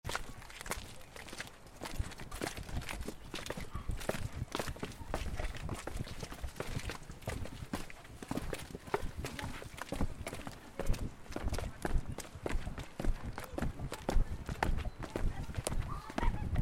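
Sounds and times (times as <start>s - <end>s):
fast walking on a trail: 0.0s - 16.6s.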